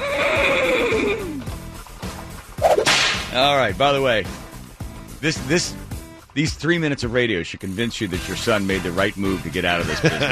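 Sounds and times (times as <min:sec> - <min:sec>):
horse whinnying: 0:00.0 - 0:01.8
speech: 0:03.4 - 0:04.4, 0:05.2 - 0:05.8, 0:06.4 - 0:10.3
laughter: 0:09.7 - 0:10.3.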